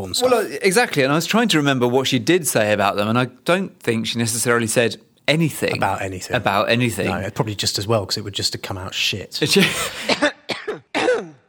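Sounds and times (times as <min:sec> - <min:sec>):
speech: 0:00.0 - 0:10.3
harsh raspy coughs: 0:09.6 - 0:11.4.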